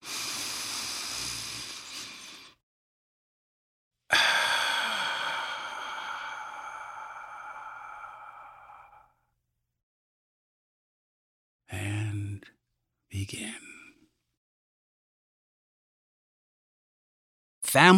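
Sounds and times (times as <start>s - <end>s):
deep breath drawn in and let out: 0.0s - 2.6s, 4.1s - 9.4s
speech: 13.2s - 13.7s, 17.7s - 17.9s.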